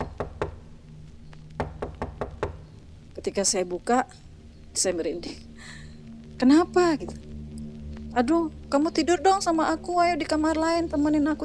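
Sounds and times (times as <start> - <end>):
heavy knocking on a bedroom door: 0.0 - 0.8, 1.6 - 2.9
speech: 3.2 - 5.8, 6.4 - 7.3, 8.2 - 11.4.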